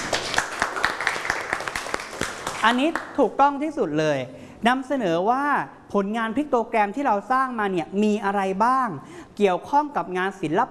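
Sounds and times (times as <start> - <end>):
students clapping in a school classroom after a classmate's presentation: 0.0 - 3.2
speech: 2.6 - 10.7.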